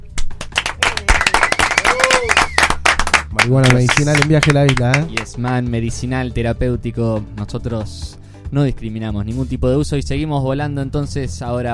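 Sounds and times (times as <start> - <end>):
applause for guests from a small group: 0.0 - 5.7
people cheering: 0.7 - 5.2
speech: 3.4 - 11.7.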